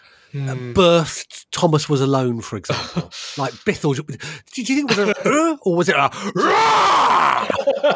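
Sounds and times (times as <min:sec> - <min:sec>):
speech: 0:00.3 - 0:07.9
laughter: 0:02.7 - 0:03.6, 0:04.7 - 0:05.6, 0:06.4 - 0:07.9
person groaning long and strained: 0:06.2 - 0:07.6.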